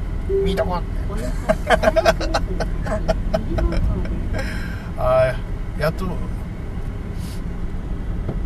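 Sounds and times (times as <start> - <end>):
cars passing by on the street: 0.0 - 8.4
speech: 0.3 - 6.4
people laughing: 1.2 - 4.5.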